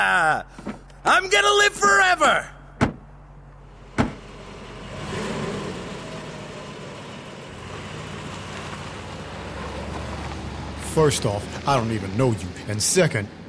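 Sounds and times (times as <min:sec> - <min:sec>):
speech: 0:00.0 - 0:02.6, 0:11.0 - 0:13.4
sharp thuds like car doors shutting: 0:02.8 - 0:03.1, 0:03.9 - 0:04.2
car engine surging as the vehicle pulls off: 0:03.4 - 0:13.4.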